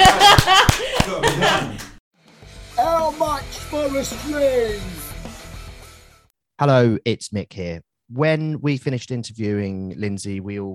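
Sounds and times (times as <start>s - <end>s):
applause from a small group: 0.0s - 2.0s
laughter: 0.0s - 2.0s
speech: 3.9s - 5.0s, 6.6s - 10.7s.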